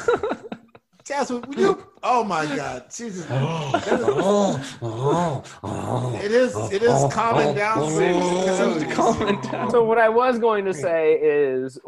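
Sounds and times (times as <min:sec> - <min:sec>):
laughter: 0:00.0 - 0:04.8, 0:06.2 - 0:10.0
speech: 0:01.1 - 0:11.8
short breathy bursts: 0:02.6 - 0:09.7
coyote whimpering and growling while being milked: 0:04.2 - 0:09.8.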